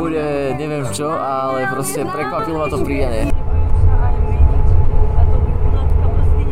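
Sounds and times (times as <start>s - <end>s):
speech: 0.0s - 3.5s
departing bus rumbling as a camp ends: 2.5s - 6.5s.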